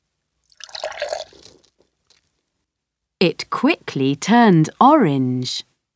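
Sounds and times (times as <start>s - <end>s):
pink liquid poured into a small glass test tube: 0.4s - 2.2s
faint drips: 0.4s - 2.3s
speech: 3.2s - 5.7s.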